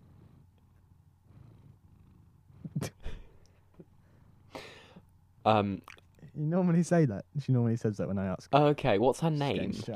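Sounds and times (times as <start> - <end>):
female kitten purring: 0.0 - 3.0
speech: 5.4 - 9.9.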